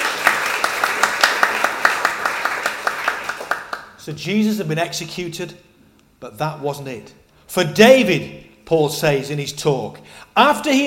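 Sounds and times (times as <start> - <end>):
audience applause: 0.0 - 3.9
speech: 4.0 - 10.8.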